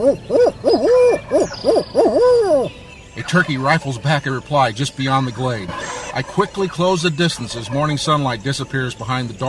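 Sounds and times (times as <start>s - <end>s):
speech: 0.0s - 1.8s, 2.6s - 9.4s
hunter imitating owl hooting call on a mountain ridge: 2.0s - 2.7s.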